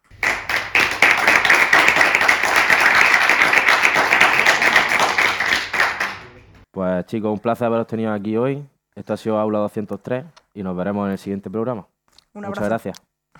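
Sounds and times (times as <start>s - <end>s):
small group applauding a guest: 0.0s - 6.6s
speech: 7.0s - 13.1s.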